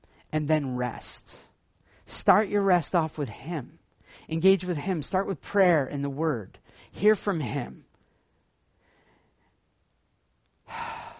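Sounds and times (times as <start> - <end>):
speech: 0.3 - 1.5, 2.1 - 7.9
deep exhale: 10.7 - 11.1.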